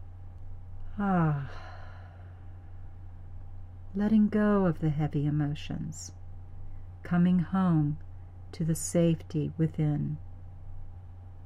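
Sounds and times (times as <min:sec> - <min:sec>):
slow breath out as a soft voiced sigh: 0:00.9 - 0:02.4
speech: 0:01.0 - 0:01.7, 0:03.9 - 0:06.2, 0:07.0 - 0:10.2.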